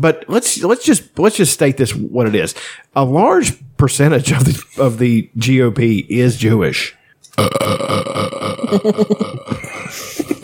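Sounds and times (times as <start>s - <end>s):
speech: 0.0s - 10.4s
long loud burp with reverb effect: 7.4s - 9.9s
laughter: 8.6s - 10.4s.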